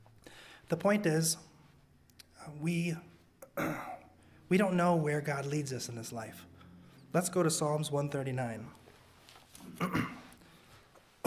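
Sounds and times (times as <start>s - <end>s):
speech: 0.7s - 1.5s, 2.5s - 3.9s, 4.5s - 6.5s, 7.1s - 8.8s, 9.6s - 10.2s
person with seasonal allergies coughing: 3.6s - 4.1s, 9.6s - 10.3s.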